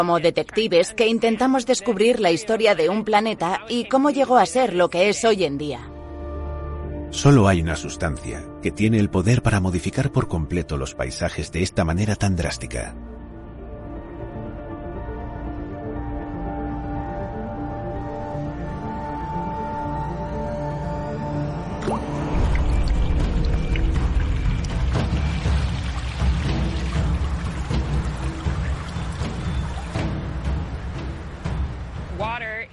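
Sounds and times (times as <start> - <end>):
speech: 0.0 - 5.9, 7.1 - 13.1
sustained tonal background: 0.0 - 32.4
water splashing and pouring: 21.7 - 32.0.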